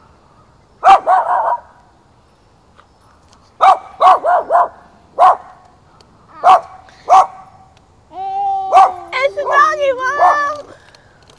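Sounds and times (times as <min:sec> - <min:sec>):
dog barking: 0:00.8 - 0:01.7, 0:03.6 - 0:05.5, 0:06.4 - 0:07.6, 0:08.7 - 0:09.0, 0:10.1 - 0:10.5.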